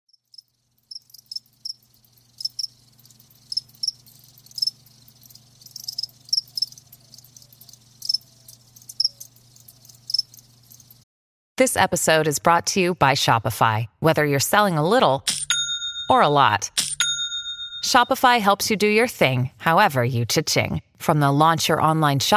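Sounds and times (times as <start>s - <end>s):
crickets chirping: 0.1s - 11.0s
speech: 11.6s - 15.3s, 16.1s - 16.8s, 17.8s - 22.3s.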